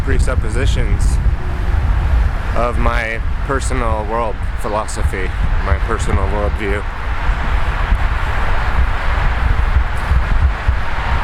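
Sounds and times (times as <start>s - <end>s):
loud wind buffeting an outdoor microphone: 0.0s - 11.2s
speech: 0.1s - 1.4s, 2.6s - 7.0s.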